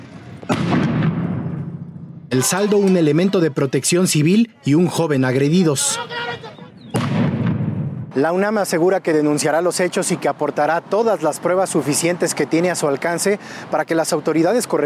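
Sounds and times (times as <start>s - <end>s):
firecracker thrown by protesters exploding: 0.4s - 2.3s, 6.9s - 8.2s
speech: 2.3s - 6.5s, 8.2s - 14.8s
protest crowd noise and commotion: 2.3s - 8.7s.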